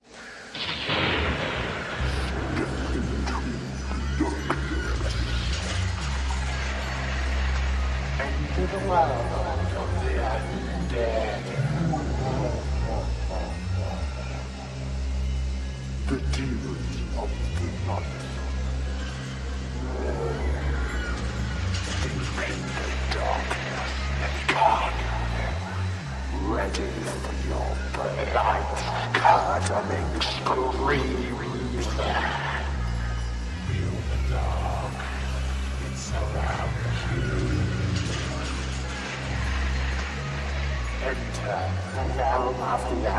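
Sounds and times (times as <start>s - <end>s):
Halloween voice: 0.0s - 43.1s.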